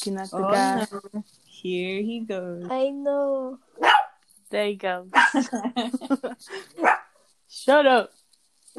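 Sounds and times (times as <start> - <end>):
speech: 0.0 - 8.2
laughter: 0.4 - 1.0, 5.3 - 6.8
dog barking at delivery man: 3.8 - 4.2, 5.1 - 5.4, 6.8 - 7.1.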